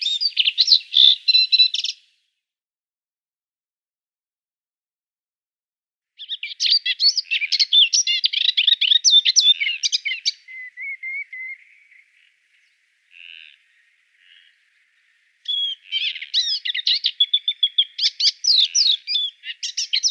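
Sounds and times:
moustached warbler chattering song of scratchy and whistled notes: 0.0s - 2.0s, 6.2s - 20.0s.

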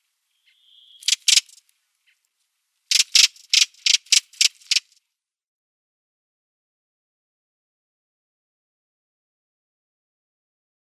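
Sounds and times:
redwing harsh calls: 0.5s - 1.6s, 2.9s - 4.9s.

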